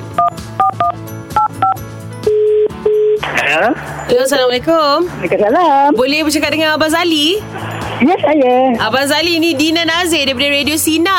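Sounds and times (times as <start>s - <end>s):
telephone keypad beeps as a number is dialed: 0.2s - 3.2s
speech: 3.5s - 11.1s.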